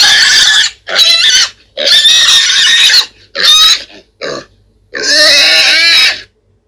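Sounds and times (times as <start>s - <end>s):
multiple pigs squealing: 0.0s - 6.3s.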